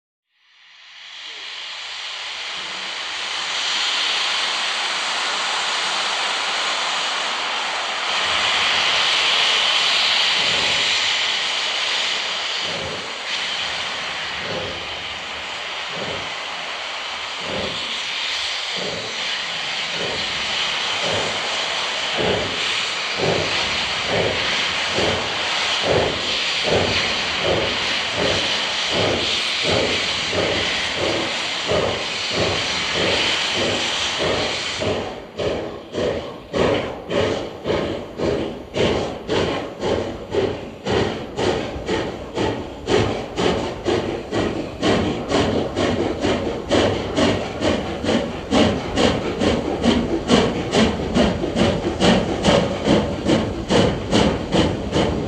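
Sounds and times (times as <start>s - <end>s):
train steam release: 0.5s - 55.2s.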